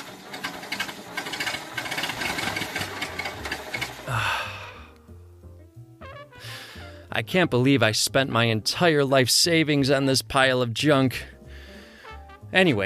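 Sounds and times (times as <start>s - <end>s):
Vauxhall Cresta car engine being started: 0.0s - 4.8s
speech: 7.2s - 11.3s, 12.5s - 12.8s.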